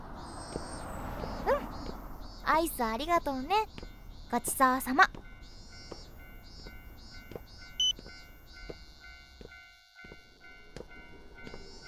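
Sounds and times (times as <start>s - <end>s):
train pulling into a station: 0.0s - 9.4s, 10.1s - 11.8s
speech: 2.5s - 5.2s
short electronic beeps: 7.2s - 9.1s.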